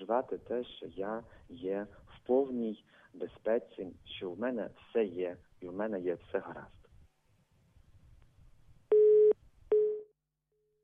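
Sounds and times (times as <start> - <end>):
speech: 0.1 - 6.8
telephone busy tone beeps after dropped call: 8.9 - 10.1.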